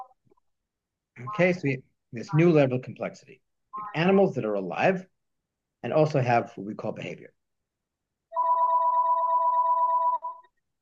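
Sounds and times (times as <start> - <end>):
speech: 1.3 - 5.1, 5.8 - 7.4
home landline telephone ringing with electronic two-tone trill: 8.3 - 10.4.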